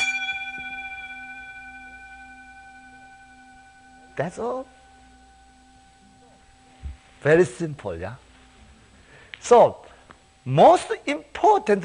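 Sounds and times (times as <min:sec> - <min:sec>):
bell struck once and ringing: 0:00.0 - 0:07.8
speech: 0:04.2 - 0:04.8, 0:07.2 - 0:08.2, 0:09.4 - 0:09.8, 0:10.4 - 0:11.8.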